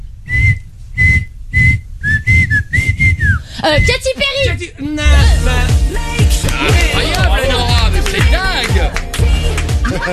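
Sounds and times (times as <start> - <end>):
person whistling a bright catchy pop tune: 0.3 - 4.0
speech: 3.7 - 6.9
laughter: 6.5 - 10.1.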